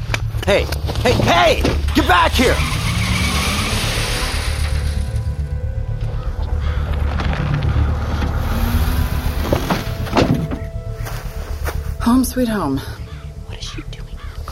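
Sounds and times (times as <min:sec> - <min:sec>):
car engine roaring as the vehicle pulls away: 0:00.0 - 0:14.5
speech: 0:00.5 - 0:02.8, 0:12.1 - 0:13.0
car tires screeching and skidding: 0:01.2 - 0:10.8.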